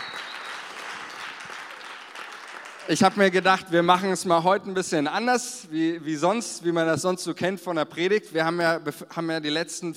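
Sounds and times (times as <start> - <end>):
audience applause with many hands clapping: 0.0 - 3.4
speech: 2.9 - 9.9.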